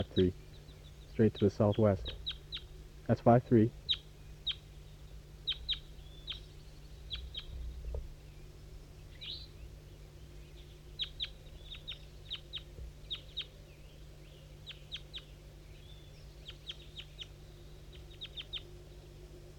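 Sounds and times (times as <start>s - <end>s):
speech: 0.0s - 0.5s, 1.2s - 2.2s, 3.1s - 3.8s
adult bird chirping: 0.0s - 2.8s, 3.8s - 7.8s, 10.4s - 18.7s
juvenile birds chirping: 0.0s - 19.5s
steady low hum: 0.0s - 19.5s.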